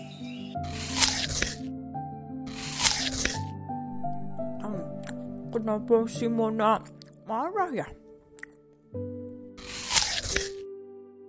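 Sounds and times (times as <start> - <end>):
soft sustained music: 0.0 - 11.2
crunchy chewing of an apple: 0.6 - 1.7, 2.5 - 3.5, 9.6 - 10.6
speech: 5.5 - 8.0, 8.9 - 9.1.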